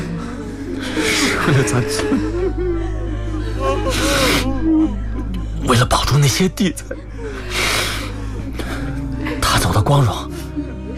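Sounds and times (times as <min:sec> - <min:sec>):
laughter: 0:00.0 - 0:05.6, 0:06.3 - 0:10.9
steady low hum: 0:00.0 - 0:10.9
child crying: 0:00.9 - 0:05.2
speech: 0:01.5 - 0:02.4, 0:05.6 - 0:07.4, 0:09.6 - 0:10.3.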